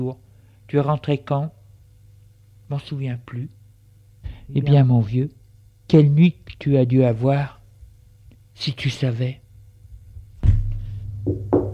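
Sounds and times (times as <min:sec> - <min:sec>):
speech: 0:00.0 - 0:01.6, 0:02.7 - 0:03.6, 0:04.5 - 0:07.6, 0:08.6 - 0:09.4, 0:11.3 - 0:11.5
knocking on a door: 0:10.4 - 0:11.7.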